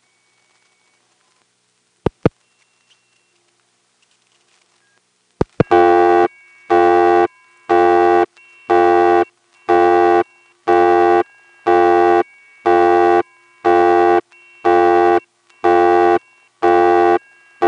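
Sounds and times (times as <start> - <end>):
loud buzzy telephone busy signal: 5.6 - 17.6.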